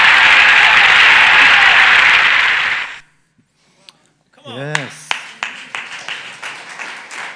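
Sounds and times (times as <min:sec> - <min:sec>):
large crowd applauding after a speech: 0:00.0 - 0:03.0, 0:04.7 - 0:07.3.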